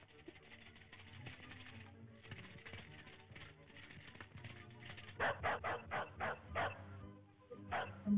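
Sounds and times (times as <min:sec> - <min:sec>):
dog barking: 0:05.2 - 0:06.8, 0:07.7 - 0:08.1.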